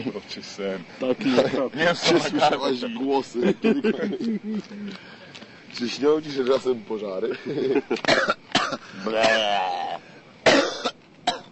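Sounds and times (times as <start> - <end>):
speech: 0.0 - 9.8
laughter: 3.2 - 4.9, 7.2 - 8.1
person coughing: 8.1 - 9.6, 10.4 - 11.5
strained wheezy vocal sound: 8.8 - 10.2.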